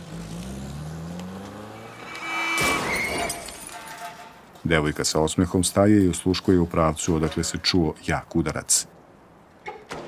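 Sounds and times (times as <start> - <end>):
taxi engine rumbling as the car pulls away and accelerates: 0.0 - 3.1
speech: 4.6 - 9.0.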